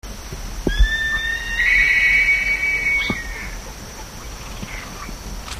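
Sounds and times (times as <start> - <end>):
black-chested buzzard-eagle calling with a strained harmonic-rich whistle: 0.7 - 3.6.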